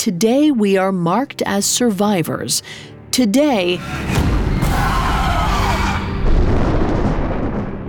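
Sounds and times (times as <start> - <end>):
speech: 0.0 - 5.0
booming crash of thunder: 5.4 - 7.8.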